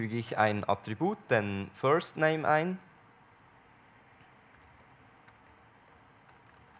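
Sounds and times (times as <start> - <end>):
speech: 0.0 - 2.9
typing on a computer keyboard: 4.5 - 6.7.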